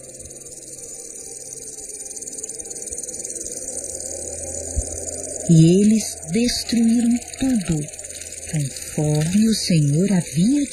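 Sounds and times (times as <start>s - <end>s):
locust swarm buzzing: 0.0s - 10.7s
low rumble: 3.1s - 10.6s
speech: 5.5s - 10.7s.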